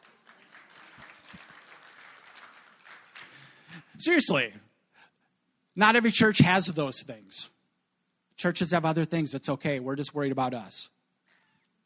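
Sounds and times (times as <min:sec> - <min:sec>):
church audience applause: 0:00.0 - 0:03.7
speech: 0:04.0 - 0:04.7, 0:05.8 - 0:07.5, 0:08.4 - 0:11.0.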